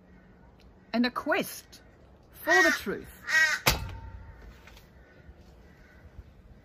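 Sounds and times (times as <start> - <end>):
speech: 0.9 - 1.8, 2.4 - 3.5
crow cawing: 2.4 - 6.6.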